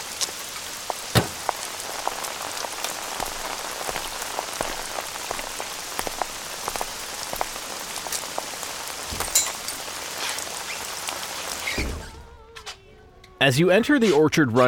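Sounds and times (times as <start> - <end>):
water drips: 0.0 - 11.8
rain pattering on a hard surface: 0.0 - 11.9
speech: 13.4 - 14.6.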